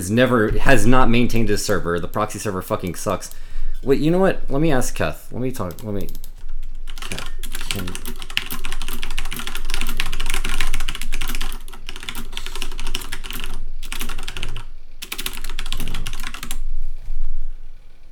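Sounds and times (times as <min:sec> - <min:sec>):
speech: 0:00.0 - 0:06.3, 0:07.1 - 0:08.2
typing on a mechanical keyboard: 0:05.6 - 0:16.6.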